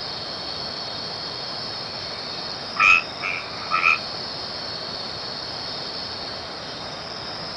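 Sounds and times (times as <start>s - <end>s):
steady high hiss: 0.0s - 7.5s
white-edged treefrog Boana albomarginata hollow knocking calls: 2.8s - 4.0s.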